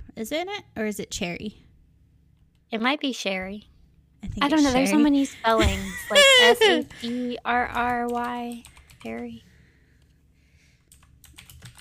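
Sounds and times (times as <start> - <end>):
low hum: 0.0 - 11.8
speech: 0.2 - 1.6, 2.7 - 9.5
laughter: 5.5 - 7.2
typing on a keyboard: 7.7 - 9.4, 10.9 - 11.8.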